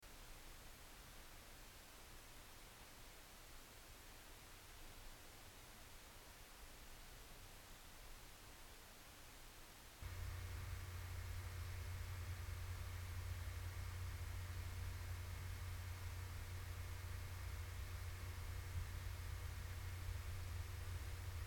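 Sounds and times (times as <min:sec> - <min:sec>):
WD Green 2TB hard drive whirring: 0:10.0 - 0:21.4.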